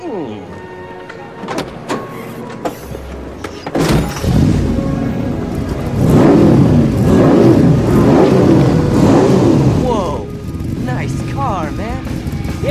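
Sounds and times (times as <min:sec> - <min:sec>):
car engine revving: 0:03.8 - 0:12.6
people talking in a film scene: 0:09.8 - 0:12.6.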